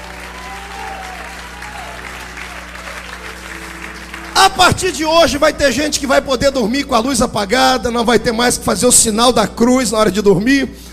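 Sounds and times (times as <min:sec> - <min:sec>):
scattered shouts and whoops: 0:00.0 - 0:03.1
large audience applause: 0:00.0 - 0:05.8
large audience cheering: 0:00.0 - 0:05.8
speech: 0:04.4 - 0:10.8.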